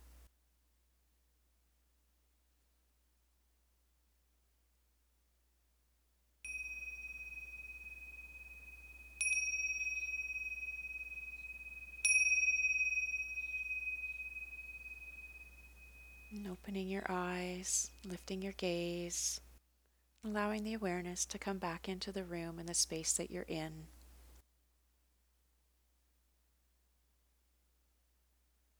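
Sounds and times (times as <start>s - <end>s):
meditation bell struck to close a meditation practice: 6.5s - 19.2s
speech: 16.4s - 19.5s, 20.2s - 24.0s.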